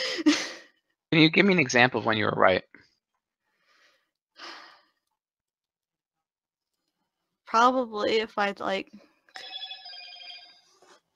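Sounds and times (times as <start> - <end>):
speech: 1.1 - 2.8, 7.5 - 9.5
phone electronic ringtone melody: 9.4 - 10.8.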